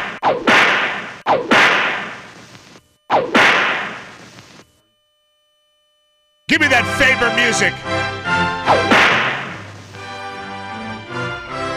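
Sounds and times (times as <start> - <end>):
whip cracks: 0.0 - 2.3, 3.1 - 4.1, 8.7 - 9.6
speech: 6.6 - 8.9.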